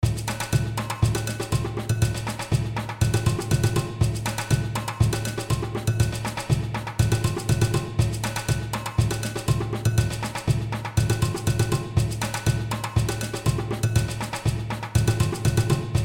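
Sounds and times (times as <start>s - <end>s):
rhythmic beat: 0.0s - 16.0s.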